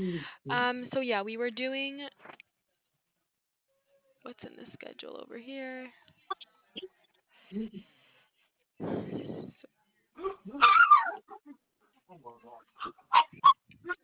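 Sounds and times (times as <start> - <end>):
speech: 0.0 - 2.4, 4.2 - 7.9, 8.8 - 9.6, 10.2 - 14.0
excited dogs barking and yelping: 10.2 - 11.6, 12.8 - 14.0.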